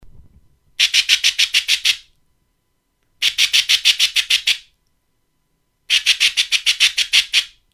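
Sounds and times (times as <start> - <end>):
friendly magpie call: 0.8 - 2.1, 3.2 - 4.7, 5.9 - 7.6.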